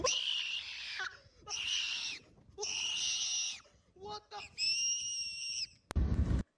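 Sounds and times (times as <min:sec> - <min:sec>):
high pitched screaming: 0:00.0 - 0:03.6, 0:04.4 - 0:05.8.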